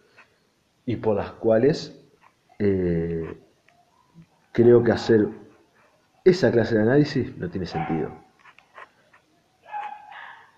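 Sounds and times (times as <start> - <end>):
speech: 0.8 - 2.0, 2.6 - 3.4, 4.6 - 5.4, 6.3 - 8.2
dogs barking and whining: 3.2 - 6.2, 7.7 - 10.5.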